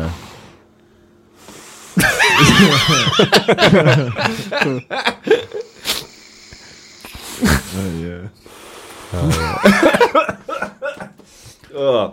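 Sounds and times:
laughter: 2.0 - 5.8, 9.2 - 11.2
wheezy laugh-like snorts: 5.5 - 9.7
person coughing after a puff on a vape: 9.2 - 11.2.

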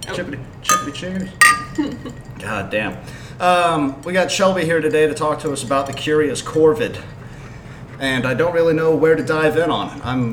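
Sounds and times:
speech: 0.1 - 7.2, 8.0 - 10.3
glasses clinking in a toast: 0.7 - 2.4.

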